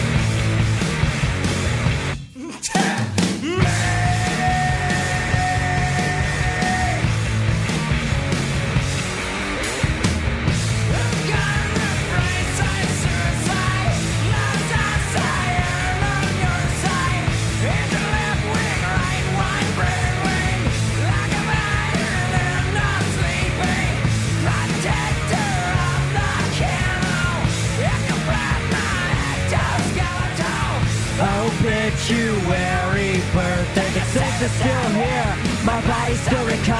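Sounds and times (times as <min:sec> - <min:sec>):
heavy distorted grunge rock guitars: 0:00.0 - 0:36.7
raw screamed male vocal in a grunge rock song: 0:02.4 - 0:07.0.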